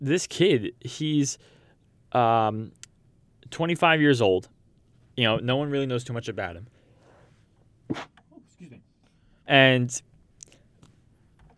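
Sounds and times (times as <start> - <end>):
speech: 0.0 - 2.8, 3.5 - 4.5, 5.2 - 6.7, 7.9 - 8.8, 9.5 - 10.1
person sneezing: 7.9 - 8.8.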